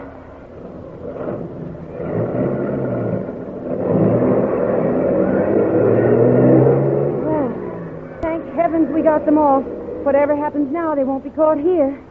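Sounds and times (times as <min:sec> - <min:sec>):
heavy bus engine revving as the bus pulls away: 0:00.0 - 0:11.0
speech: 0:09.2 - 0:12.0.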